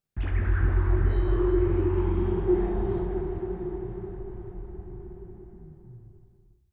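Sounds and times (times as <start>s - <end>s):
ghost sound effect: 0.2s - 6.4s.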